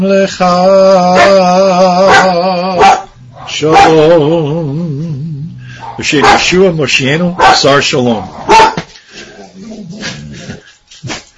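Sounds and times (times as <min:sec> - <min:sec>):
speech: 0:00.0 - 0:02.7, 0:03.6 - 0:05.0, 0:06.0 - 0:08.8
dog barking: 0:01.2 - 0:01.4, 0:02.0 - 0:04.0, 0:05.8 - 0:06.6, 0:07.4 - 0:08.9.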